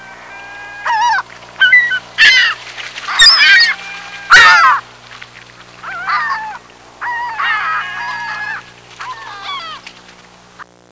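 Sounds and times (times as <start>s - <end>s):
gull wailing and yelping cries: 0.0s - 10.2s
low steady hum: 0.0s - 10.9s.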